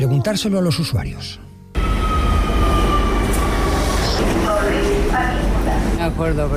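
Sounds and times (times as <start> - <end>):
speech: 0.2 - 1.5, 6.0 - 6.5
underground metro train wheels rumbling on rails: 1.8 - 6.5.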